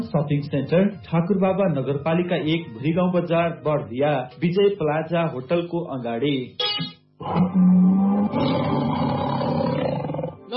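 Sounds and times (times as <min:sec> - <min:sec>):
speech: 0:00.1 - 0:09.0
tiger growl-like calls: 0:07.2 - 0:10.4
tiger roaring: 0:07.2 - 0:10.4.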